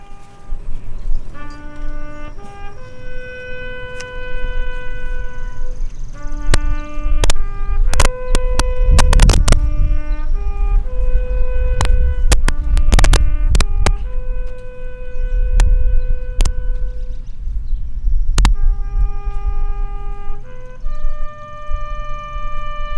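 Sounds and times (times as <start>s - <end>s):
bugle playing a slow melody at a veterans' memorial: 0.0s - 22.9s
sharp clicks and cracks: 6.5s - 9.6s, 11.8s - 14.6s, 18.4s - 18.6s.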